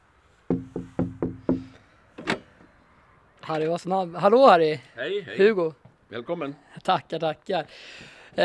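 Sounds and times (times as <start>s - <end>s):
knocking on a door: 0.5s - 1.8s
speech: 3.5s - 8.4s.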